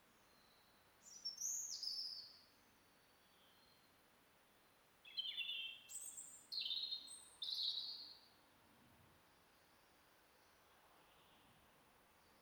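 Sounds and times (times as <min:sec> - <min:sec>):
faint background hiss: 0:00.0 - 0:12.4
European robin singing: 0:00.3 - 0:02.4, 0:05.0 - 0:08.2.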